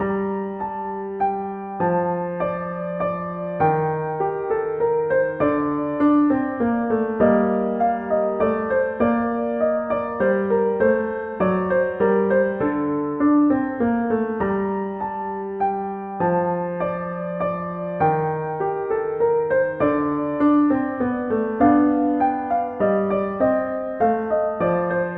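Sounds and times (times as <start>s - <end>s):
piano piece: 0.0s - 25.1s.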